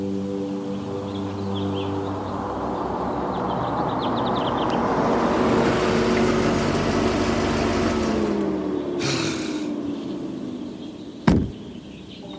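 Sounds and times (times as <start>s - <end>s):
car engine winding down: 0.7s - 12.3s
car door slamming: 11.2s - 11.7s.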